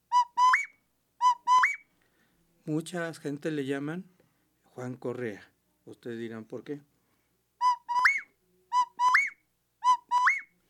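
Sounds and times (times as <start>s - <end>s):
bird's territorial whistled call to attract females: 0.1s - 1.8s, 7.6s - 10.5s
speech: 2.7s - 4.2s, 4.8s - 6.9s.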